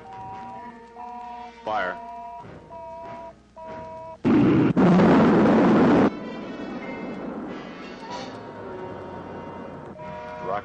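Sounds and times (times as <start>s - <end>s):
electronic tones: 0.0s - 4.8s
rocket second stage firing: 4.2s - 6.2s.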